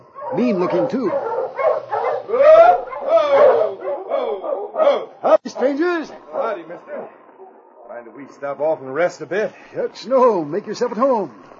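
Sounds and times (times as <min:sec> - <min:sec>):
pack of sled dogs barking and yipping excitedly: 0:00.0 - 0:07.9
speech: 0:00.3 - 0:01.8, 0:04.9 - 0:07.2, 0:08.0 - 0:11.5.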